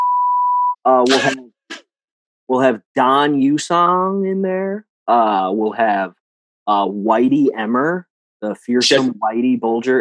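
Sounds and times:
single-pitched censor beep: 0.0 - 1.3
speech: 0.8 - 1.4, 2.5 - 9.9.

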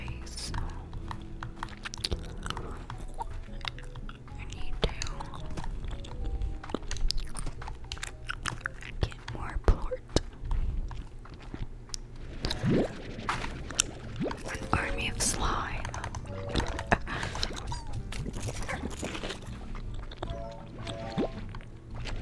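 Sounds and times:
soft layered game music with low tones and melodic notes: 0.0 - 22.2
wet gum chewing and mouth sounds: 0.0 - 22.2.

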